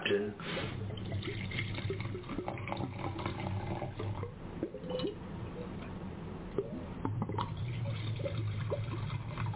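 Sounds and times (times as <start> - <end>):
low hum: 0.0 - 9.5
wine glugging out of a circular bottle with several internal chambers: 0.7 - 5.2, 6.5 - 9.5.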